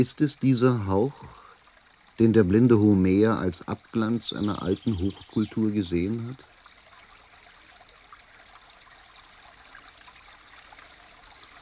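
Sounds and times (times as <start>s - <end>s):
speech: 0.0s - 1.4s, 2.2s - 6.5s
babbling brook flowing in Langada: 0.0s - 11.6s.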